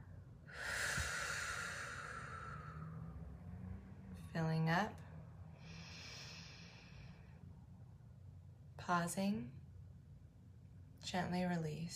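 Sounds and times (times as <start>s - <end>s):
gentle exhale of breath in a guided breathing exercise: 0.5s - 3.2s, 5.5s - 7.4s
speech: 4.4s - 5.0s, 8.9s - 9.6s, 11.1s - 11.9s.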